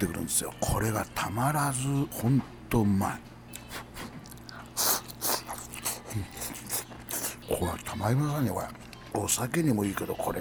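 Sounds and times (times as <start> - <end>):
speech: 0.0 - 3.8, 6.1 - 6.4, 7.5 - 10.3
chewing beef with crisp onion and lettuce: 3.5 - 8.0.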